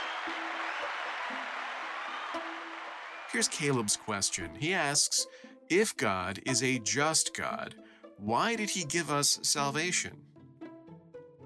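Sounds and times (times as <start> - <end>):
crowd clapping: 0.0 - 5.2
speech: 3.3 - 10.3.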